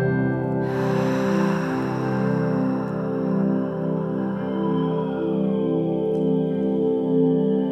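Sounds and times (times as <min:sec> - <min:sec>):
soft steady musical drone: 0:00.0 - 0:07.7
deep breath in and exhale in a guided breathing exercise: 0:00.6 - 0:04.8.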